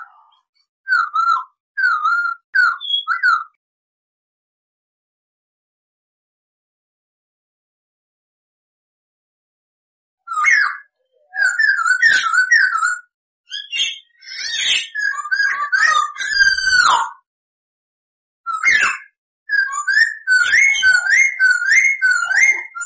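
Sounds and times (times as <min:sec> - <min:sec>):
Masked laughingthrush singing loud whistled and chattering notes: 0:00.0 - 0:03.6, 0:10.3 - 0:17.2, 0:18.5 - 0:22.8.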